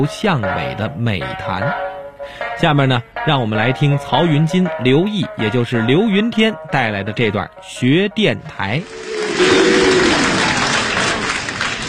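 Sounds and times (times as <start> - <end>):
speech: 0.0 - 9.9
audience applause at a crosstalk comedy stage performance: 8.9 - 11.8.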